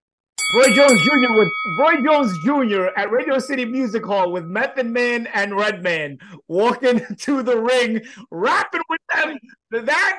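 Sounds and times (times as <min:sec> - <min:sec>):
boxing ring bell signaling the start of a round: 0:00.4 - 0:05.8
speech: 0:00.5 - 0:10.1.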